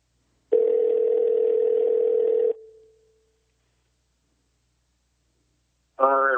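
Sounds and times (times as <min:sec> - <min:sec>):
telephone dial tone: 0:00.5 - 0:02.8.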